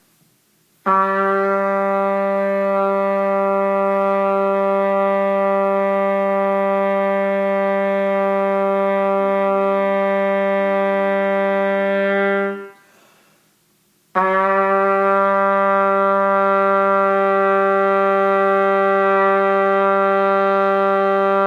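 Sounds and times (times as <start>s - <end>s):
trumpet playing long tones on low A: 0.8s - 13.2s, 14.1s - 21.4s.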